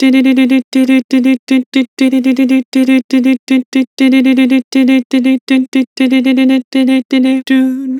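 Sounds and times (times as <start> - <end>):
person singing doo with vibrato: 0.0 - 7.9.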